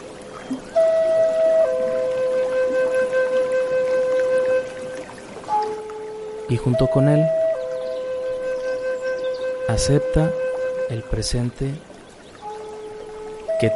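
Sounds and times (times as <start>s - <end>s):
flowing trickling water: 0.0s - 13.7s
soft ambient music of long sustained tones: 0.0s - 13.7s
speech: 6.5s - 7.4s, 9.7s - 11.9s.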